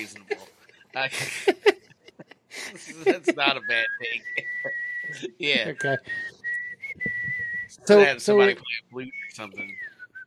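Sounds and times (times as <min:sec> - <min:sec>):
speech: 0:00.0 - 0:00.3, 0:01.0 - 0:01.7, 0:02.9 - 0:06.3, 0:07.9 - 0:09.8
laughter: 0:00.0 - 0:06.3
person whistling a tune: 0:03.5 - 0:10.2.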